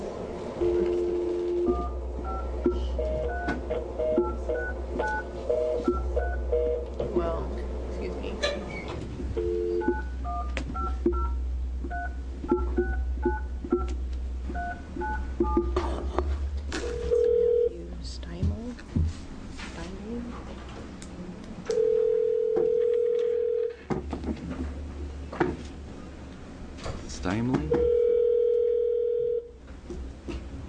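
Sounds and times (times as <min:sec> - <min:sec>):
steady low hum: 0:00.0 - 0:30.2
long phone tone: 0:00.6 - 0:06.9, 0:09.4 - 0:11.4, 0:16.8 - 0:17.8, 0:21.7 - 0:23.9, 0:27.7 - 0:29.5.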